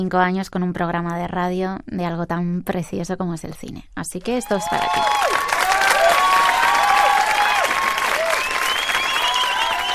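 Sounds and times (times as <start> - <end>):
speech: 0.0 - 5.5
cheers from the crowd: 4.4 - 9.9
crowd applauding: 4.6 - 9.9
whistles from the crowd: 6.9 - 9.9.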